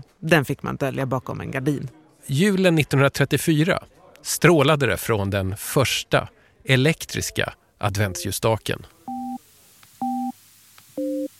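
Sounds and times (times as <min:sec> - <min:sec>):
speech: 0:00.2 - 0:09.0
telephone line tone while placing a call: 0:09.1 - 0:09.4, 0:10.0 - 0:10.4, 0:11.0 - 0:11.3.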